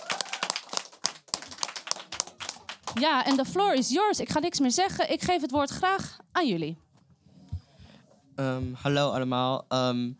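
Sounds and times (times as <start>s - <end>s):
audience clapping for a group of young activists: 0.0s - 3.7s
speech: 2.9s - 6.8s, 8.4s - 10.1s.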